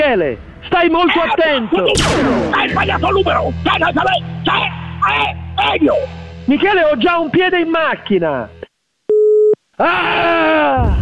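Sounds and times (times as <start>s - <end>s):
speech: 0.1s - 8.6s, 9.8s - 11.0s
telephone busy-signal beep after the caller hangs up: 9.1s - 9.6s.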